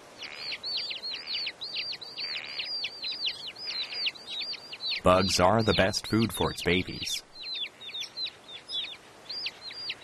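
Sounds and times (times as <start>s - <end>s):
Mongolian lark singing on grassland: 0.2s - 10.0s
speech: 5.0s - 7.3s.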